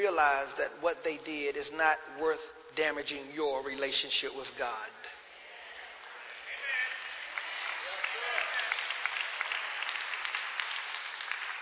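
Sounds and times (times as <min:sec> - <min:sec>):
speech: 0:00.0 - 0:05.1
crowd clapping in praise: 0:05.8 - 0:11.6.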